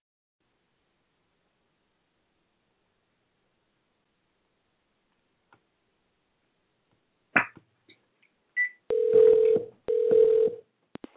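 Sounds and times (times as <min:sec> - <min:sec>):
telephone dialing clicks and beeps: 0:08.6 - 0:10.6
steady buzzy telephone line tone: 0:08.9 - 0:10.6.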